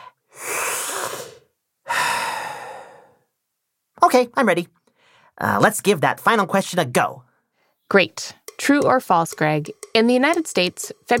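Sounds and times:
deep breath: 0.0s - 3.3s, 4.9s - 5.4s
speech: 4.1s - 4.8s, 5.4s - 7.3s, 7.9s - 11.1s.

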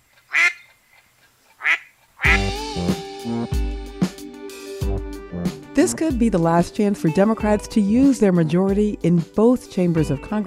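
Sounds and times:
cartoonish duck quacking: 0.3s - 0.6s, 1.6s - 2.6s
loud bright comedic music: 2.2s - 9.3s
speech: 5.8s - 10.4s.

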